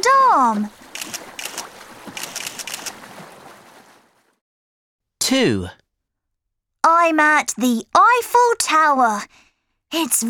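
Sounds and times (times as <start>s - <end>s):
speech: 0.0s - 1.2s, 5.3s - 5.8s, 6.8s - 10.2s
boat moving along a river in Paris, France: 0.0s - 4.4s
water rushing and splashing on a river in Paris, France: 0.0s - 4.4s.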